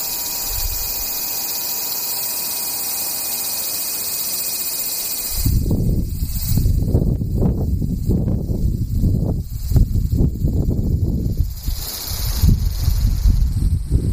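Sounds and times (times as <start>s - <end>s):
low rumbling wind gusts hitting the microphone: 0.0s - 1.2s, 5.2s - 14.1s
cicadas buzzing: 0.0s - 14.1s.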